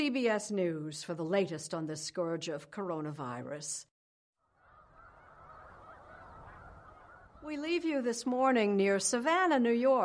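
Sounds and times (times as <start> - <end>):
speech: 0.0 - 3.9, 7.4 - 10.0
large flock of migrating snow geese honking near Savannah New York: 4.6 - 7.6.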